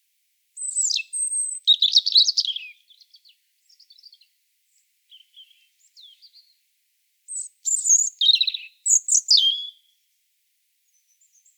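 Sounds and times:
European robin Erithacus rubecula singing: 0.6s - 6.6s, 7.3s - 10.0s.

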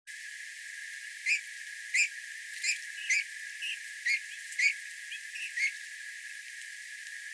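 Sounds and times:
Eurasian bullfinch Pyrrhula pyrrhula calling with mellow piped whistles: 2.0s - 4.8s.

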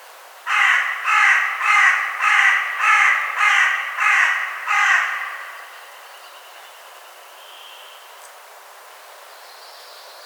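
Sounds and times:
Carrion crow Corvus corone giving loud harsh caws: 0.5s - 6.0s.

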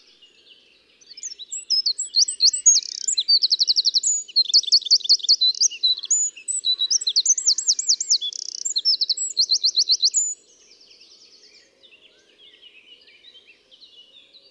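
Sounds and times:
Eurasian wren song: 0.0s - 10.7s.

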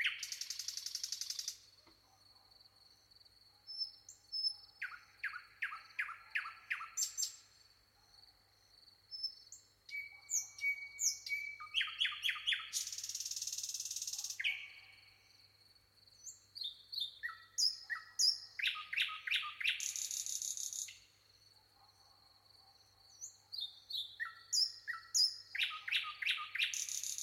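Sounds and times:
Common nightingale Luscinia megarhynchos singing: 0.0s - 1.7s, 3.6s - 7.6s, 9.1s - 15.2s, 16.2s - 21.2s, 23.1s - 27.2s.

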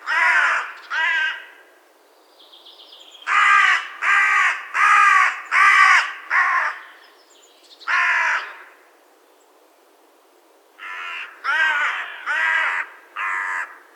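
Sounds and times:
carrion crow Corvus corone harsh hoarse caws: 0.0s - 1.6s, 3.3s - 6.9s, 7.9s - 8.8s, 10.8s - 13.9s.

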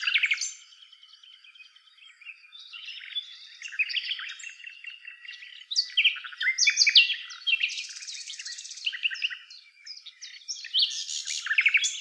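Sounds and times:
Common nightingale Luscinia megarhynchos singing: 0.0s - 11.9s.

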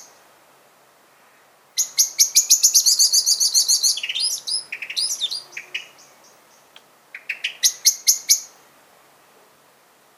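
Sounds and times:
common blackbird Turdus merula giving sharp chinking and squeaky notes: 1.8s - 8.5s.

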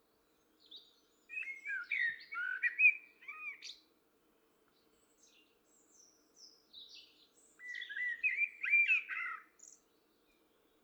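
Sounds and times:
common blackbird singing mellow warbled phrases: 0.7s - 3.8s, 6.8s - 9.8s.

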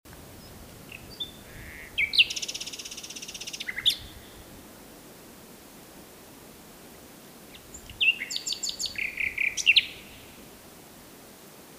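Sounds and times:
Common nightingale Luscinia megarhynchos singing: 0.4s - 4.5s, 7.5s - 10.4s.

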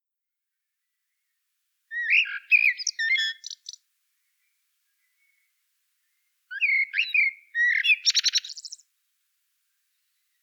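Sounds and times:
common blackbird Turdus merula singing: 1.9s - 3.8s, 6.5s - 8.8s.

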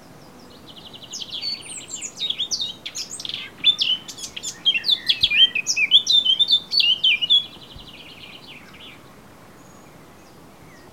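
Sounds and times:
Eurasian blackcap song with scratchy chatter and fluty whistles: 0.7s - 9.0s.

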